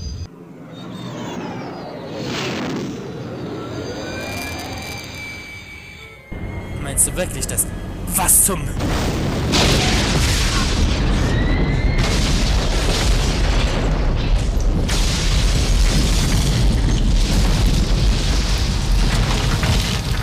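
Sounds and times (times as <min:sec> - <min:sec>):
speech: 0:07.0 - 0:09.4
booming bursts: 0:08.7 - 0:20.2
cargo freighter explosion rumbling at an orbital dock: 0:08.7 - 0:20.2
roaring crackling blast: 0:08.7 - 0:20.2.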